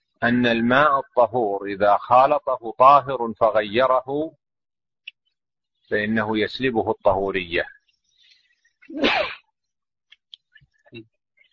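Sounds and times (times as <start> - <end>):
speech: 0.2 - 4.4, 5.9 - 7.8, 8.9 - 9.4, 10.9 - 11.1
person sneezing loudly: 8.9 - 9.5.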